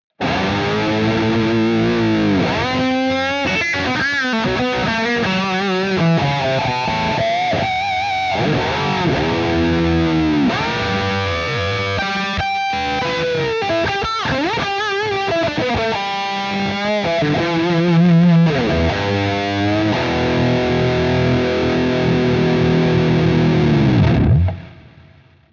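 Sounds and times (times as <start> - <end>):
amplified lead guitar: 0.1 - 25.5.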